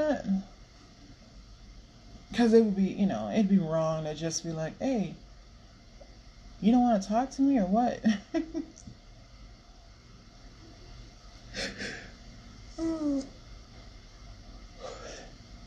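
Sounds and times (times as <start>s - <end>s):
speech: 2.3s - 5.2s, 6.6s - 8.9s, 12.8s - 13.4s
person yawning: 12.8s - 13.3s.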